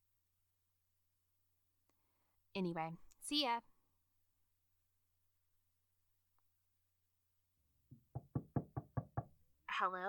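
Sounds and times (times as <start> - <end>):
speech: 2.6 - 3.7, 9.8 - 10.0
knocking on a door: 7.9 - 9.4.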